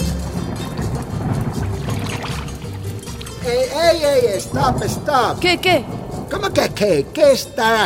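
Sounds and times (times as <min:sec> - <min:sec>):
rainwater pouring into a container: 0:00.0 - 0:03.8
speech: 0:03.5 - 0:07.8.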